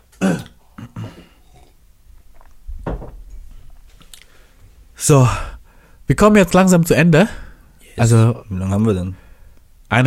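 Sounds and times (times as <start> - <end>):
throaty gulp of a quick drink: 0.2 - 2.6
short swallowing noises: 0.4 - 2.7
soft thump of a cup being set down: 2.7 - 3.4
speech: 5.1 - 5.4, 6.1 - 7.4, 8.0 - 9.2.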